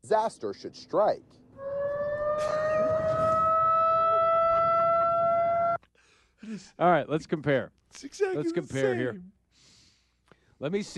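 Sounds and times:
speech: 0.1 - 1.7, 2.4 - 2.9, 6.5 - 9.4, 10.6 - 10.9
loud siren wailing: 1.6 - 5.8.

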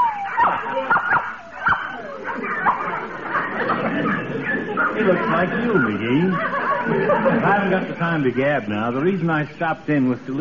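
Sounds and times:
puppy yipping: 0.0 - 5.1
puppy whining: 0.0 - 6.6
laughter: 0.4 - 9.2
speech: 5.0 - 10.3.

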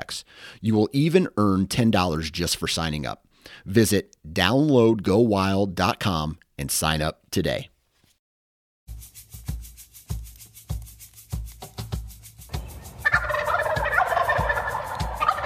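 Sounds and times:
speech: 0.1 - 7.7
steady thumping drumbeat: 9.5 - 15.4
wild turkey gobbling loudly: 12.6 - 15.4.

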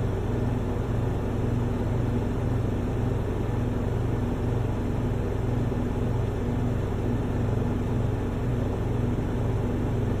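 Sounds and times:
refrigerator humming with buzzing tone and faint whine: 0.0 - 10.1.

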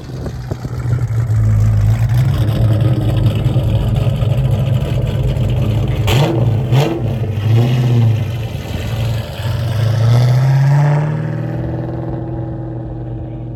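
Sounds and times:
Mustang V8 engine idling and revving through small exhaust tips: 0.0 - 13.5.

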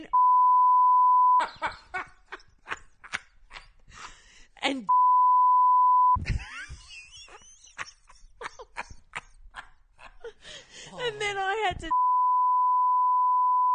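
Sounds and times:
censorship bleep over spoken words: 0.1 - 1.4, 4.9 - 6.2, 11.9 - 13.7
speech: 1.4 - 2.1, 4.7 - 5.0
people laughing: 1.4 - 4.1, 6.2 - 11.1
person speaking excitedly and gasping: 10.9 - 11.9.

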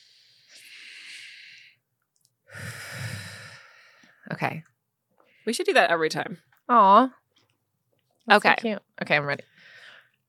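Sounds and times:
slow deliberate box breathing: 0.0 - 1.8, 2.5 - 4.2
speech: 4.4 - 4.8, 5.5 - 7.2, 8.2 - 9.5.

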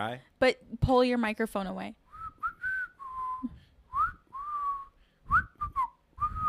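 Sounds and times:
speech: 0.0 - 2.0
person whistling loudly: 2.2 - 6.4.

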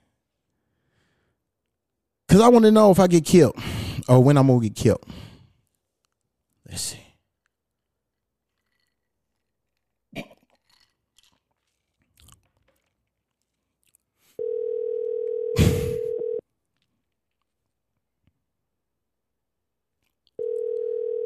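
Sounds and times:
speech: 2.3 - 5.3, 6.7 - 7.0
ringback tone of an outgoing phone call: 14.4 - 16.4, 20.4 - 21.2.

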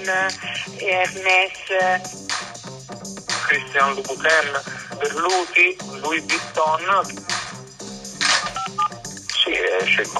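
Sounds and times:
speech: 0.0 - 2.5, 3.5 - 7.3, 9.5 - 10.1
telephone keypad dialing tones while phoning suppliers: 8.6 - 9.0.

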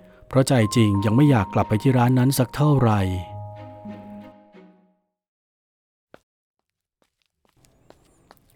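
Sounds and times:
speech: 0.3 - 3.3
tonal sound: 0.5 - 4.5
nine-year-old child's short uneven footsteps walking: 6.1 - 8.5.

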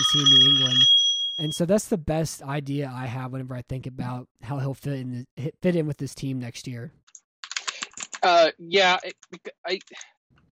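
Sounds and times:
voice: 0.0 - 0.8, 1.4 - 6.9, 7.7 - 10.0
speech: 0.1 - 7.0, 8.2 - 10.2
fingers typing on a computer keyboard: 7.4 - 8.2.

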